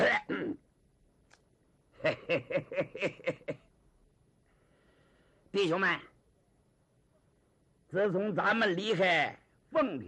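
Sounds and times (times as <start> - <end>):
person imitating throat clearing: 0.0 - 0.6
speech: 2.0 - 3.4, 5.5 - 6.1, 7.9 - 10.0.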